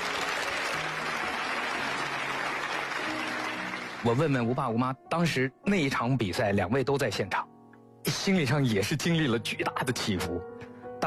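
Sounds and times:
sustained applause from a sizable audience: 0.0 - 4.4
speech: 4.0 - 11.0.

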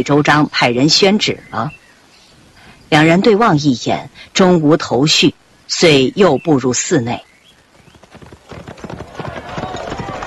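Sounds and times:
speech: 0.0 - 1.8, 2.9 - 7.3
horse galloping along a street: 7.8 - 10.2.

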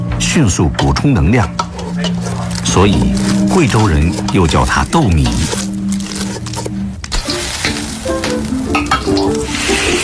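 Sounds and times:
speech: 0.2 - 1.6, 2.6 - 5.6
scraping and stirring strokes: 1.6 - 10.0
pickled cabbage sizzling while stir-fried in lard: 4.4 - 10.0.

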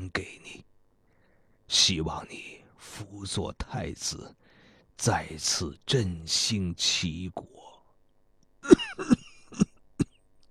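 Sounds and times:
speech: 1.7 - 4.4, 5.0 - 7.7
harsh coughing fit: 8.6 - 10.2.

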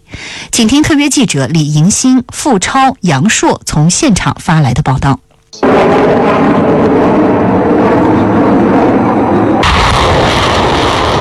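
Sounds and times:
speech: 0.6 - 7.4
artillery fire during live-fire joint land-air military exercise: 5.6 - 11.1.

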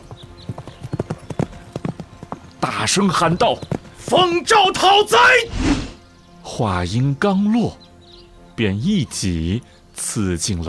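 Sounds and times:
hooves of a galloping horse charging out of a crowd: 0.0 - 4.9
speech: 2.7 - 5.8, 6.5 - 7.8, 8.6 - 10.6.

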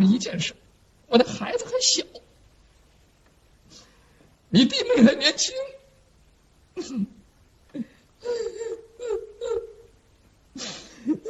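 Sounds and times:
speech: 0.1 - 2.2, 4.5 - 5.8, 6.8 - 7.2
man crying in distress with whimpering and sobs: 8.2 - 9.9.

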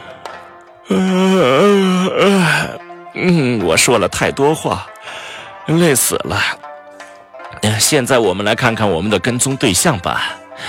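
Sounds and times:
speech: 0.9 - 1.2, 3.2 - 6.6, 7.7 - 10.6
person yawning while stretching: 0.9 - 3.6.

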